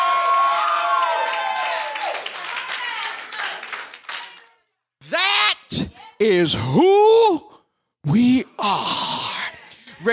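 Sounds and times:
audience screaming and cheering: 0:00.0 - 0:03.1
people clapping: 0:00.0 - 0:04.6
speech: 0:06.2 - 0:09.1.

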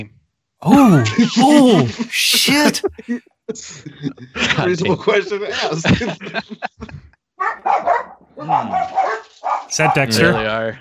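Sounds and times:
speech: 0:00.0 - 0:10.7
laughter: 0:00.7 - 0:07.2
dogs barking: 0:07.4 - 0:10.2.

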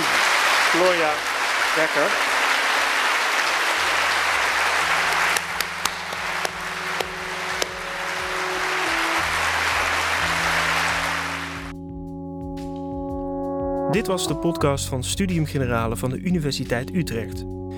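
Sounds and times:
large audience applause at an evening lecture: 0:00.0 - 0:11.7
speech: 0:00.7 - 0:02.3, 0:13.9 - 0:17.6
soft music: 0:03.8 - 0:17.7.

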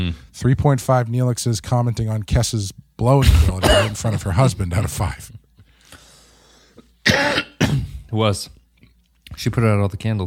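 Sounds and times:
speech: 0:00.1 - 0:05.4, 0:08.1 - 0:08.6, 0:09.4 - 0:10.2
person clearing throat: 0:03.2 - 0:04.4, 0:07.0 - 0:08.1.

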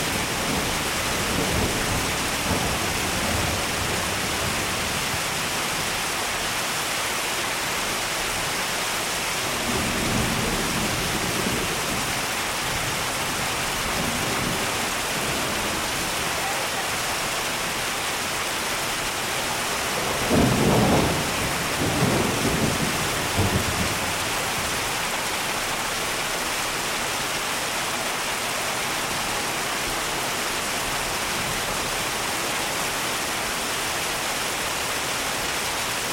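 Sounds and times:
steady dense rain hissing: 0:00.0 - 0:36.1
low rumbling thunder: 0:00.1 - 0:05.2, 0:09.5 - 0:12.2, 0:19.8 - 0:25.0.

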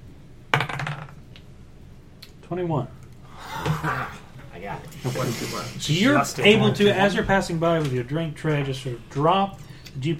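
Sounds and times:
dice rolled and clattering onto a hard table: 0:00.6 - 0:01.2
speech: 0:02.5 - 0:03.0, 0:03.6 - 0:10.1.

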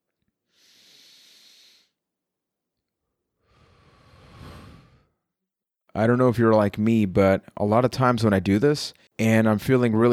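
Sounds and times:
deep breath in through the nose: 0:00.5 - 0:02.0, 0:03.4 - 0:05.2
deep breath out through the mouth: 0:00.5 - 0:02.0, 0:03.4 - 0:05.2
speech: 0:06.0 - 0:10.1.

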